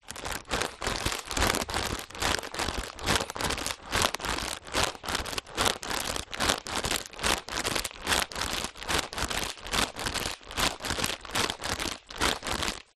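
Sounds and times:
human hyperventilating into a plastic bag: 0.0s - 12.8s.

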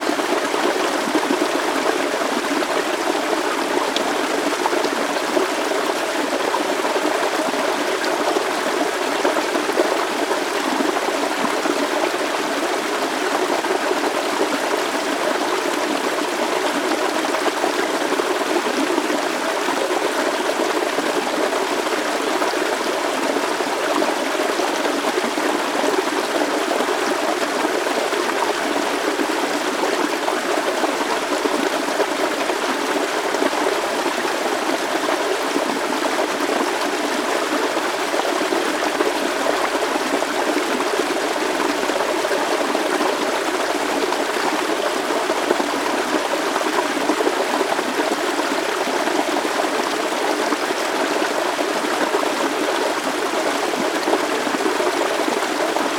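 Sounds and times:
small forest waterfall: 0.0s - 55.9s.

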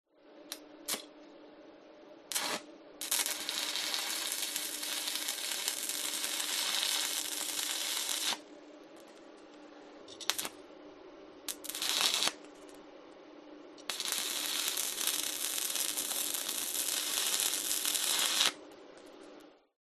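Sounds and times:
industrial stick welder welding: 2.3s - 8.4s, 10.1s - 10.6s, 11.5s - 12.5s, 13.8s - 18.6s.

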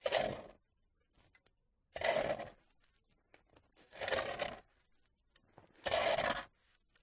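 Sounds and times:
shovel clearing snow from path: 2.0s - 2.6s, 3.8s - 4.7s, 5.8s - 6.6s.

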